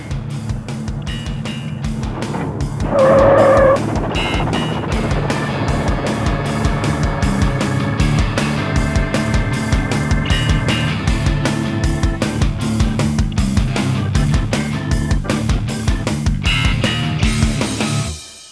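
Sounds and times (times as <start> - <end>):
car engine revving as the driver accelerates: 0.2 - 17.0.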